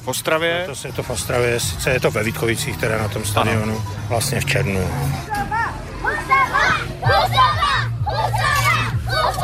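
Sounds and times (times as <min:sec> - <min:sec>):
speech: 0:00.0 - 0:05.6
schoolchildren fans cheering and shouting: 0:05.3 - 0:09.4.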